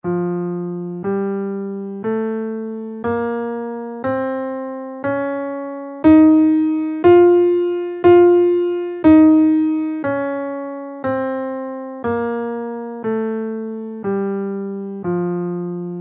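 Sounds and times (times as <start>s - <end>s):
mixolydian b6 scale in F played: 0.0s - 16.0s.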